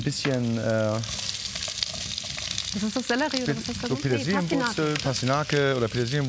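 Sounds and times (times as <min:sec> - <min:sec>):
speech: 0:00.0 - 0:01.3, 0:02.8 - 0:06.2
red onions frying in melted coconut fat: 0:00.0 - 0:06.2.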